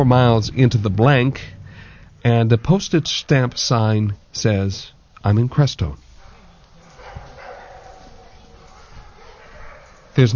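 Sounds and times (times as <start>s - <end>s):
speech: 0.0s - 1.6s, 2.2s - 6.0s, 10.2s - 10.3s
dog barking: 6.2s - 10.3s.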